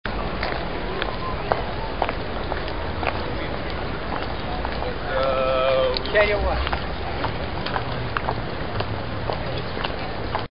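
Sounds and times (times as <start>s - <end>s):
pedestrians on a city sidewalk: 0.1s - 10.5s.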